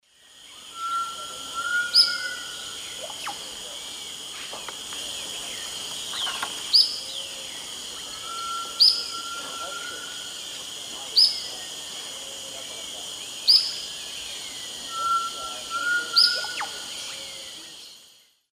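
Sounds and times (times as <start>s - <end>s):
Tolmomyias viridiceps calls in South American Eastern Lowlands: 0.5s - 18.0s.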